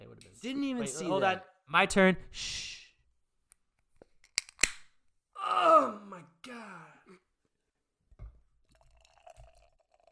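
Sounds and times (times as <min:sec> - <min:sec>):
speech: 0:00.4 - 0:02.7
beer being hard-poured into a glass: 0:08.6 - 0:10.1
beer fizzing and bubbling in a glass: 0:08.6 - 0:10.1.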